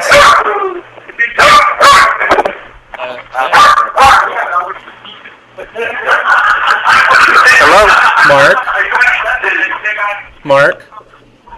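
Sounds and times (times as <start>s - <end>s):
dachshund barking in sharp yaps: 0.0s - 0.5s, 1.4s - 2.2s, 3.5s - 4.4s
people's voices murmuring: 0.0s - 11.5s
laughter: 5.5s - 10.1s.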